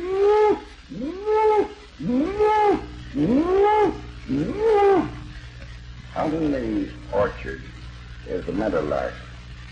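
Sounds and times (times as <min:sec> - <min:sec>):
cow mooing in a distant field: 0:00.0 - 0:05.2
speech: 0:08.4 - 0:09.3.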